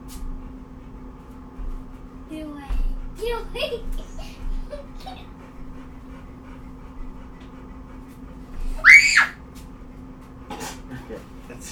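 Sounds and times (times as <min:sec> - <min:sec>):
low hum: 0:00.0 - 0:11.7
speech: 0:02.3 - 0:04.3
person screaming: 0:08.8 - 0:09.3.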